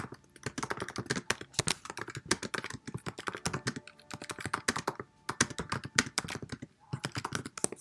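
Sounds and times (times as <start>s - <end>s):
rapid typing on a computer keyboard writing a reply to a professor: 0.0s - 7.8s.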